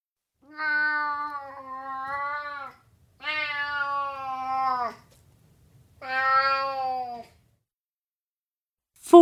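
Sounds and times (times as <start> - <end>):
cat meowing: 0.4 - 5.1, 6.0 - 7.4.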